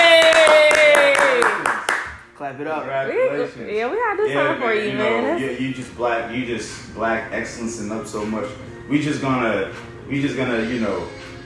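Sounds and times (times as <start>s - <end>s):
rhythmic hand clapping: 0.0s - 2.3s
speech: 2.5s - 11.2s.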